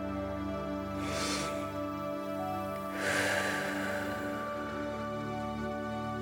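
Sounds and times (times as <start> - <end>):
steady sustained music: 0.0 - 6.1
breathing in through the nose and out through the mouth during a relaxation exercise: 1.0 - 5.0.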